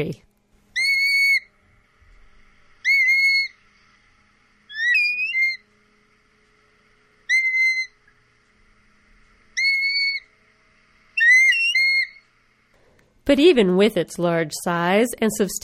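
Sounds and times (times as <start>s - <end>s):
speech: 0.0s - 0.3s, 13.3s - 15.6s
black-bellied plover plaintive whistle call: 2.8s - 4.0s, 4.7s - 5.7s, 7.2s - 8.3s, 9.5s - 12.4s.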